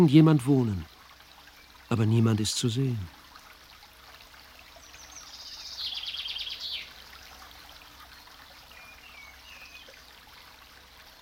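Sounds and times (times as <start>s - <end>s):
speech: 0.0s - 0.9s, 1.9s - 3.2s
babbling brook trickling through flowering meadows: 0.0s - 11.2s
birds singing and chirping: 4.7s - 7.0s, 8.1s - 10.1s.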